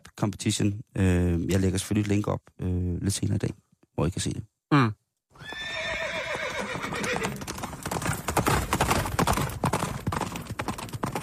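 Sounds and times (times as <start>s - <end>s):
speech: 0.2s - 5.0s
horse neighing: 5.4s - 7.5s
horse hooves clip-clopping: 5.4s - 11.2s.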